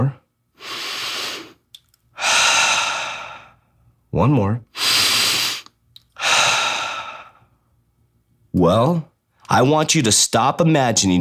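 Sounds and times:
deep breath: 0.6 - 1.6, 2.2 - 3.8, 4.8 - 7.6
speech: 4.1 - 4.7, 8.6 - 11.1.

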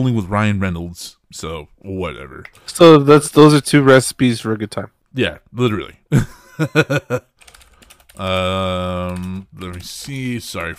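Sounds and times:
speech: 0.0 - 7.3, 8.2 - 10.7
laughter: 6.1 - 7.4
clicky computer keyboard typing: 7.1 - 10.7.

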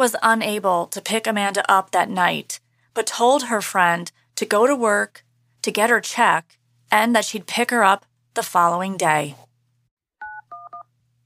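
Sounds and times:
speech: 0.0 - 9.4
faint low electrical hum: 0.0 - 11.2
telephone keypad dialing tones: 10.2 - 10.9.

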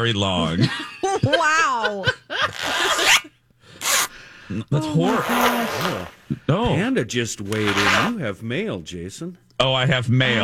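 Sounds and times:
speech: 0.0 - 2.2, 4.5 - 10.4
laughter: 0.4 - 3.3
long zipper being pulled: 2.5 - 4.1, 5.0 - 6.3, 7.5 - 8.2.

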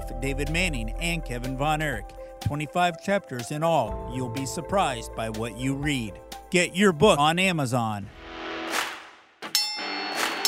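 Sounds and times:
speech: 0.2 - 8.2
wrestling ring bell ding: 9.6 - 10.4.

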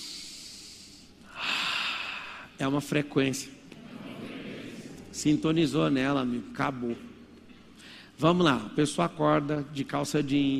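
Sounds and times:
person taking a deep breath: 0.0 - 2.6
speech: 2.6 - 3.6, 5.2 - 7.2, 8.2 - 10.5.

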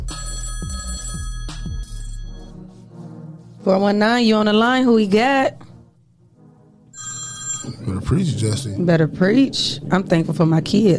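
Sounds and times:
telephone ringing with an electronic warble: 0.0 - 2.5, 7.0 - 7.9
speech: 3.6 - 5.6, 8.1 - 10.9.

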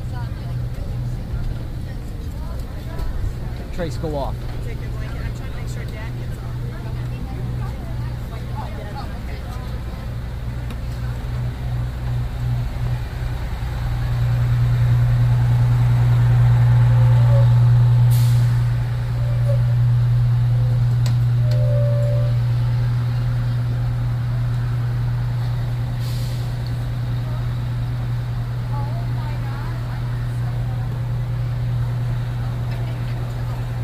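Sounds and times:
bus engine idling: 0.0 - 33.8
faint voices murmuring: 0.0 - 33.8
speech: 3.8 - 4.9
air brakes releasing with sharp hisses: 17.0 - 19.8, 26.0 - 26.7.

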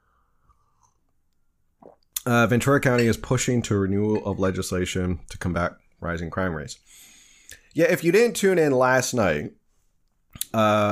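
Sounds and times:
sipping coffee from a mug: 1.8 - 4.3
speech: 1.8 - 7.1, 7.7 - 9.6, 10.5 - 10.9.

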